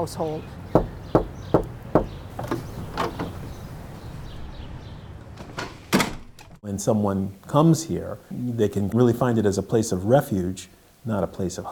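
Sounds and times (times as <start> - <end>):
speech: 0.0 - 0.6, 6.7 - 11.7
firm knocks on a wooden front door: 0.8 - 3.4.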